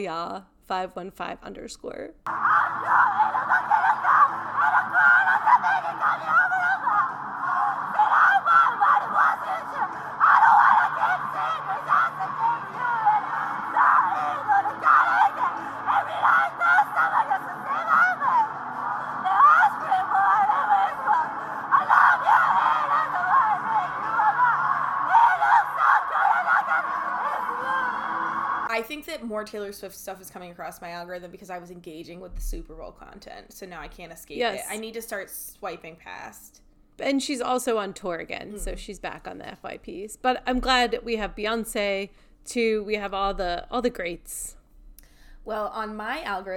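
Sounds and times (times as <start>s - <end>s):
speech: 0.0s - 3.8s, 5.0s - 7.2s, 28.8s - 44.6s, 45.4s - 46.5s
person screaming: 2.3s - 28.0s.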